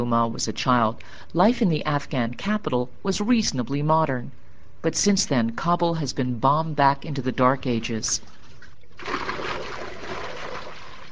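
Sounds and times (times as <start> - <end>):
speech: 0.0 - 8.4
water being drawn from a well splashing and sloshing: 7.6 - 11.1.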